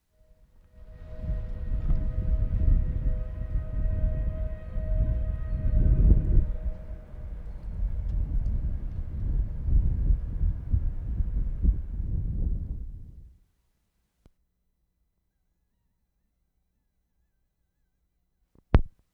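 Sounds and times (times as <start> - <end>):
brewery whistle in Skruv Sweden: 0.2 - 12.2.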